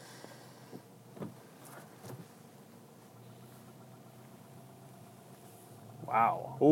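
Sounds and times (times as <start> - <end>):
faint traffic rumble with steady engine drone: 0.0 - 6.7
thumps and clatters of person hit by a car in traffic accident: 0.7 - 2.4
speech: 6.1 - 6.7.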